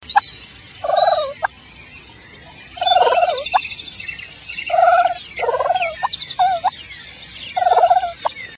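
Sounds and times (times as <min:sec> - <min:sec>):
turkey purring: 0:00.8 - 0:01.4, 0:02.8 - 0:03.6, 0:04.7 - 0:06.7, 0:07.6 - 0:08.1.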